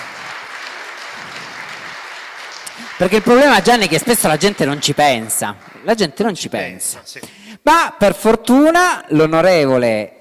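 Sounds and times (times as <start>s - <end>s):
audience applause: 0.0s - 7.2s
speech: 3.0s - 10.1s.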